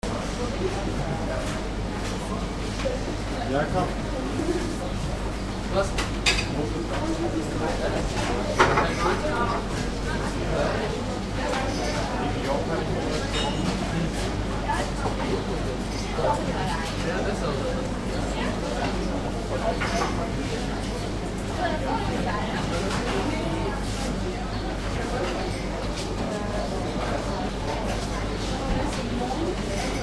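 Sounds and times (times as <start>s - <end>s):
cafe ambience: 0.0s - 30.0s.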